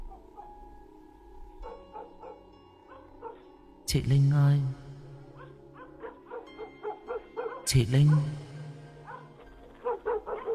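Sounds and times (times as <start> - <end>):
yellow dog barking: 1.6 - 3.5, 5.4 - 10.5
speech: 3.9 - 4.8, 7.7 - 8.5.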